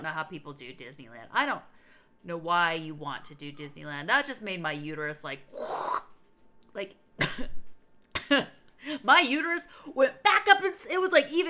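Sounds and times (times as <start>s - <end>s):
speech: 0.0s - 6.1s, 6.8s - 7.6s, 8.3s - 11.4s
woman coughing: 7.2s - 8.6s.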